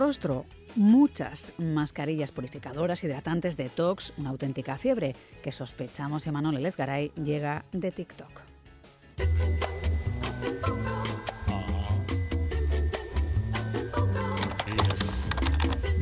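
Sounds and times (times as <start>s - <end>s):
speech: 0.0s - 8.5s
music: 0.0s - 16.0s
typing on a computer keyboard: 14.3s - 16.0s.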